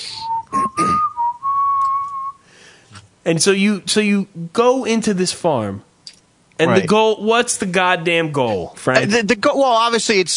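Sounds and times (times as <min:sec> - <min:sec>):
person whistling a short melodic phrase: 0:00.0 - 0:02.4
speech: 0:03.3 - 0:05.9, 0:06.6 - 0:10.3.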